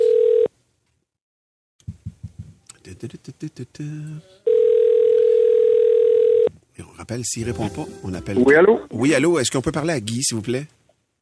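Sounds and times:
electronic ringback tone of an outgoing phone call: 0:00.0 - 0:00.5, 0:04.5 - 0:06.5
speech: 0:02.9 - 0:04.4, 0:06.8 - 0:10.8.

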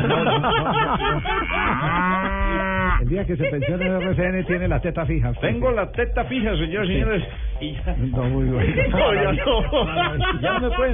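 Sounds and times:
laughter: 0:00.0 - 0:04.8, 0:08.4 - 0:10.9
speech: 0:00.4 - 0:02.1, 0:03.1 - 0:10.9
cow mooing: 0:01.1 - 0:03.0.

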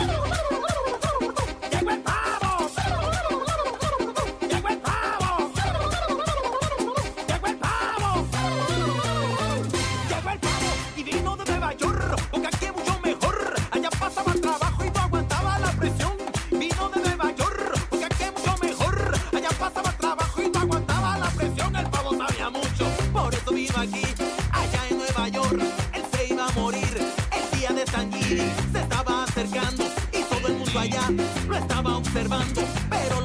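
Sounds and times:
lively classic Christmas dance song: 0:00.0 - 0:33.2
turkey-like gobbling sounds woven into the music: 0:18.8 - 0:19.4.

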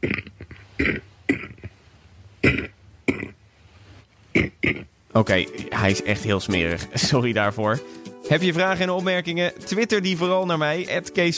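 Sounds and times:
harsh dry coughs: 0:00.0 - 0:01.7, 0:02.4 - 0:03.4
speech: 0:05.2 - 0:11.3.

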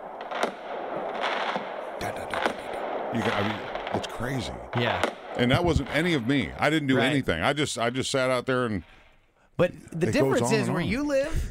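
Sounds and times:
fireworks and firecrackers exploding outdoors: 0:00.0 - 0:06.6
speech: 0:03.1 - 0:09.0, 0:09.6 - 0:11.4.

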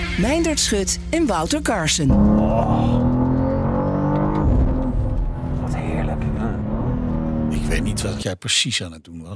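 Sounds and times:
speech: 0:00.2 - 0:03.0, 0:08.0 - 0:09.3
BMW M2 sports car engine roaring while accelerating: 0:01.2 - 0:08.2.

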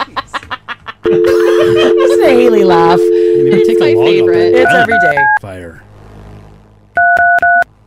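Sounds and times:
laughter: 0:00.0 - 0:02.4
low hum: 0:00.0 - 0:07.8
touch-tone beeps from a telephone keypad: 0:01.1 - 0:05.4
speech: 0:01.1 - 0:05.8.

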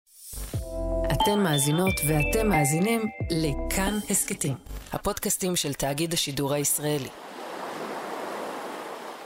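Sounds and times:
speech: 0:01.2 - 0:07.3
gentle sea waves on a beach in the Kiryat Yam area of Israel: 0:07.2 - 0:09.2.

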